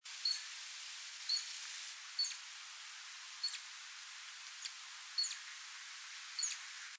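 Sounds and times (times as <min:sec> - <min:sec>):
quiet hiss: 0:00.0 - 0:06.9
bat giving short sharp high chirps: 0:00.2 - 0:00.4, 0:01.3 - 0:01.5, 0:02.2 - 0:02.4, 0:03.4 - 0:03.6, 0:04.6 - 0:05.4, 0:06.4 - 0:06.6.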